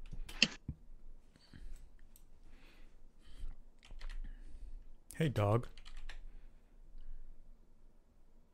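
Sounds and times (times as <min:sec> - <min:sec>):
keyboard typing: 0:03.8 - 0:04.3, 0:05.7 - 0:06.2
speech: 0:05.2 - 0:05.8.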